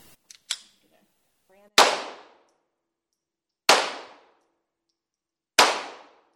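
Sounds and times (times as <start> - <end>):
.22-caliber gunshots at an indoor shooting range inside a gun store: 1.8 - 2.5, 3.7 - 4.4, 5.6 - 6.3.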